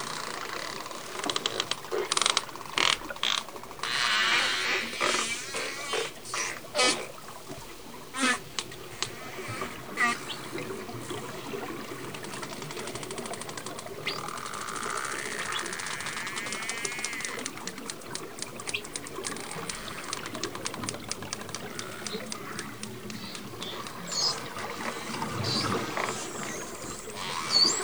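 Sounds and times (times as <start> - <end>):
dolphin click trains recorded underwater: 0.0 - 7.2, 8.2 - 27.8
dolphin wavy harmonic whistle underwater: 22.0 - 27.8.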